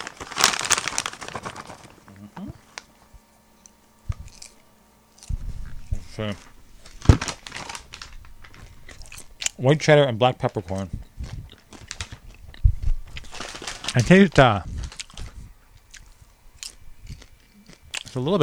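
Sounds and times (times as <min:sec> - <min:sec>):
popcorn bag being ripped open: 0:00.0 - 0:02.2, 0:05.2 - 0:09.6, 0:13.1 - 0:15.4
crinkly plastic rustling and tearing of a popcorn bag: 0:00.0 - 0:02.9, 0:03.6 - 0:09.7, 0:10.5 - 0:18.4
speech: 0:06.2 - 0:06.5, 0:09.6 - 0:11.0, 0:14.0 - 0:14.7, 0:18.2 - 0:18.4.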